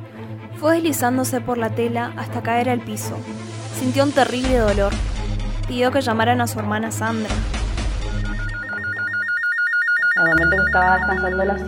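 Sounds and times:
speech: 0.6 - 5.1, 5.7 - 7.6, 10.7 - 11.6
telephone ringing with warbling electronic trill: 8.2 - 11.6.

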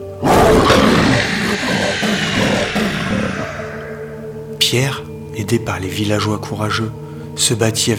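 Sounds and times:
horde of werewolves roaring while attacking a village: 0.2 - 4.3
werewolf growls and snarls: 0.2 - 4.3
speech: 4.7 - 7.9.

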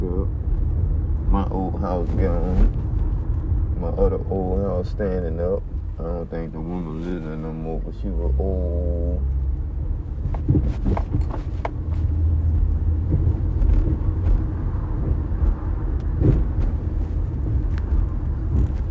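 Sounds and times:
road traffic moving past: 0.0 - 18.8
speech: 1.5 - 2.8, 3.8 - 9.4, 10.3 - 11.7
sharp knocks and clatters: 10.2 - 18.8.

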